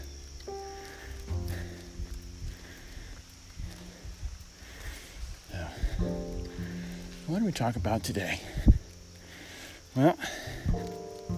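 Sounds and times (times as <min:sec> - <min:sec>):
hooves of a horse walking up a hill: 0:00.0 - 0:11.3
speech: 0:07.4 - 0:08.7, 0:10.0 - 0:10.5.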